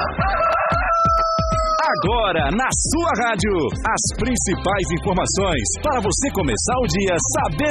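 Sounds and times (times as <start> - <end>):
rooster crowing: 0.0 - 2.1
music with a steady thumping beat: 0.0 - 7.7
speech: 2.0 - 7.7.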